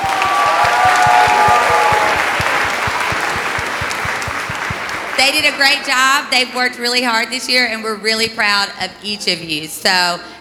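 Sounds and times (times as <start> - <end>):
faint cheers or whistles: 0.0 - 5.0
room full of people applauding: 0.0 - 6.2
speech: 5.2 - 10.3.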